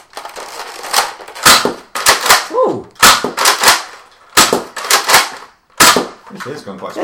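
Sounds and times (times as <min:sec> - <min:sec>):
gun being test-fired for its power in quick bursts: 0:01.4 - 0:06.2
people talking between the shots: 0:06.3 - 0:07.0.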